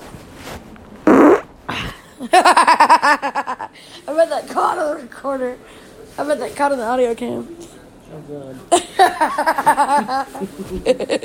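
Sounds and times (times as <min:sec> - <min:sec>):
fart: 0:01.0 - 0:01.5
squeaky fluttering fart: 0:01.1 - 0:01.4
speech: 0:02.2 - 0:11.2
laughter: 0:08.7 - 0:11.2.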